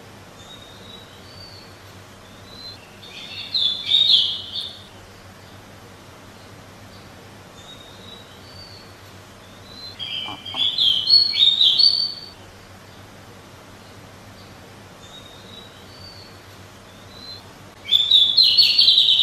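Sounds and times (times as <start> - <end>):
Pied bushchat singing: 0.4 - 5.1, 7.0 - 12.4, 15.1 - 19.2.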